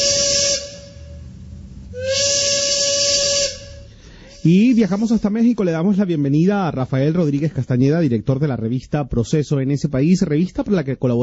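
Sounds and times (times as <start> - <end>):
train steam whistle blasts with airy hiss: 0.0 - 5.2
speech: 4.4 - 11.2.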